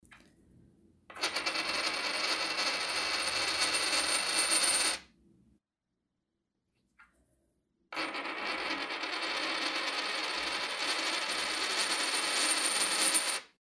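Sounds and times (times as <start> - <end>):
large coin spinning: 1.1 - 5.0, 8.0 - 13.5.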